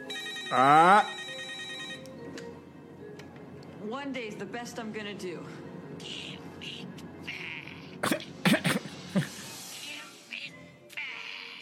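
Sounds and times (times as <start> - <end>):
speech: 0.5 - 1.2, 3.9 - 6.2
raspy throat clearing: 7.5 - 9.3.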